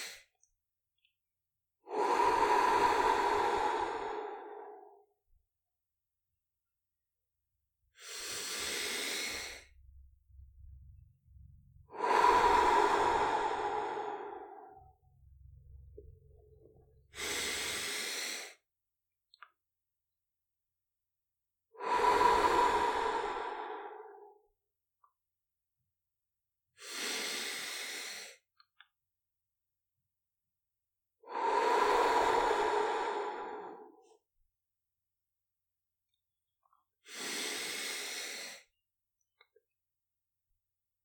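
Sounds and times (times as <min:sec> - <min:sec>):
slow deep breaths in through nose, out through mouth: 0:01.9 - 0:05.1, 0:07.9 - 0:18.6, 0:21.8 - 0:24.5, 0:31.3 - 0:34.1, 0:37.1 - 0:38.7.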